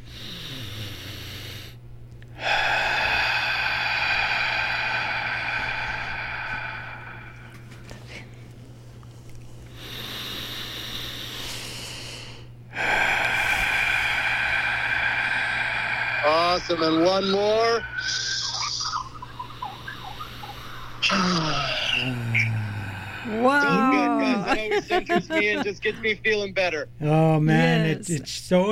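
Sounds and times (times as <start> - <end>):
deep breaths in through the nose and out during a breathing exercise: 0.0 - 1.8, 2.4 - 8.4, 9.7 - 23.4
steady low hum: 1.6 - 27.7
speech: 16.7 - 18.3, 24.8 - 28.7
laughter: 23.4 - 26.2.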